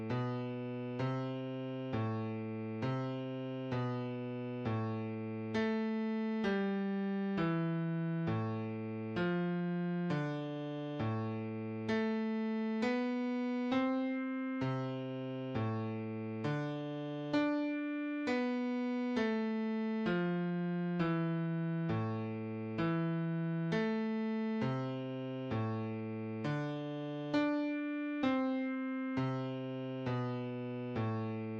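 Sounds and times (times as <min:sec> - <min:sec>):
slow adagio music in bass clef: 0:00.1 - 0:31.4.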